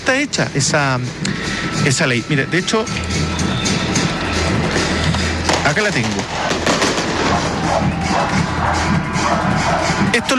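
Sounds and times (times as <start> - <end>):
speech: 0.1 - 3.6, 5.7 - 6.6, 7.3 - 10.3
dense barrage of fireworks crackling and booming: 3.0 - 9.2.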